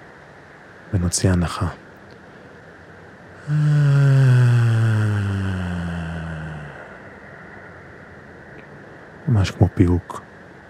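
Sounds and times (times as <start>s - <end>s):
speech: 0.9s - 1.8s, 3.5s - 4.0s, 9.4s - 10.2s
person humming a low tone on exhale in a breathing exercise: 3.4s - 7.1s.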